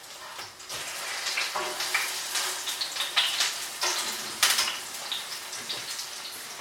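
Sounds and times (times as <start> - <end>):
potato pancakes frying in hot oil in a pan: 0.0 - 6.5.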